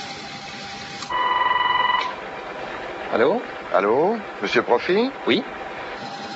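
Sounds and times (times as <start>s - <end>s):
faint telephone line hiss: 1.1s - 2.2s
speech: 3.1s - 5.6s.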